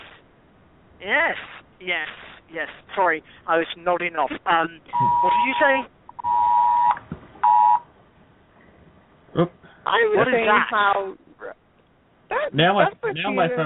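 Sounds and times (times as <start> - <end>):
speech: 1.0 - 6.0, 9.4 - 11.6, 12.5 - 13.6
phone emergency alert tone for a flash flood warning: 4.9 - 7.8.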